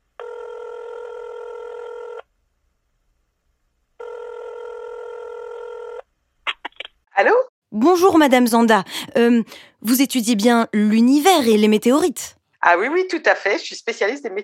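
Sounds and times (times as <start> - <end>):
telephone call ring tones on the line: 0.2 - 2.3, 4.0 - 6.0
speech: 7.2 - 14.4.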